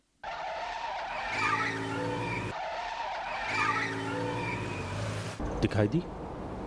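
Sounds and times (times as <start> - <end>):
engine of a pursuing car roaring: 0.2 - 5.4
tires screeching in a long skid: 0.2 - 5.4
speech: 5.6 - 6.2.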